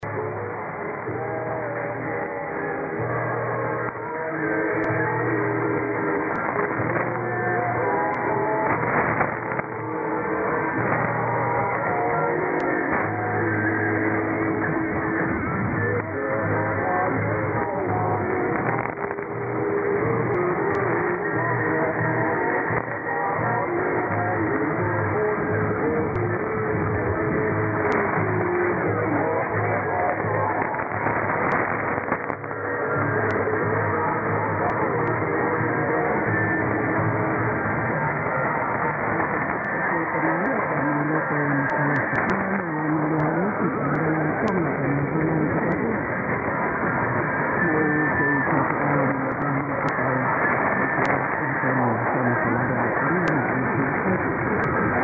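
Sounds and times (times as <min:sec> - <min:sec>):
radio broadcast in Tonga: 0:00.0 - 0:55.0.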